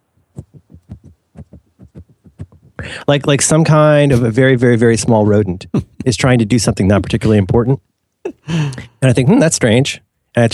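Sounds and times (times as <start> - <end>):
soft thumps of a young girl trying to open a cereal box: 0.2 - 2.9
speech: 2.8 - 10.5
laughter: 5.0 - 6.4.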